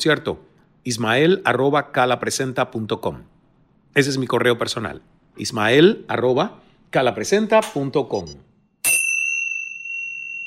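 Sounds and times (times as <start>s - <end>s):
speech: 0.0s - 3.3s, 3.9s - 8.5s
small hand bell struck and ringing: 8.8s - 10.4s.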